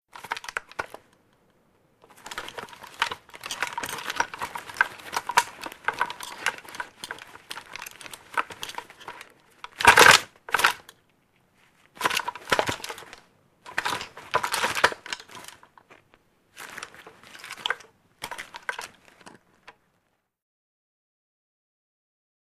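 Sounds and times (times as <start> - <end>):
light handgun handling movement: 2.0 - 11.1, 11.9 - 19.8.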